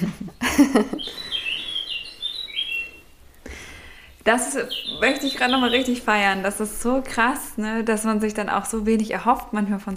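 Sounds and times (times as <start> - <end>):
speech: 0.0 - 1.2, 4.2 - 9.9
laughter: 0.0 - 1.5, 4.9 - 6.6
bird clock chiming with recorded bluethroat song: 1.0 - 3.0, 4.3 - 6.5.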